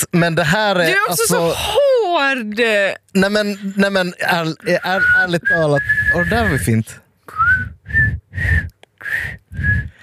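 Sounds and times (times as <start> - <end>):
speech: 0.0 - 7.0
person whistling short breathy notes: 5.0 - 10.0.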